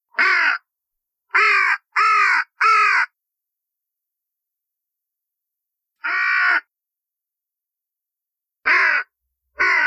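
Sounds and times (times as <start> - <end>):
crows calling: 0.1 - 0.7, 1.3 - 3.2, 6.0 - 6.7, 8.6 - 9.8.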